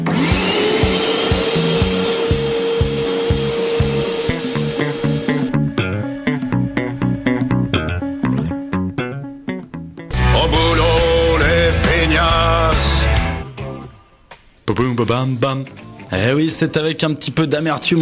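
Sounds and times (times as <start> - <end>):
vacuum cleaner running: 0.0 - 7.3
music with thumping beat: 0.1 - 14.5
speech: 15.0 - 17.9.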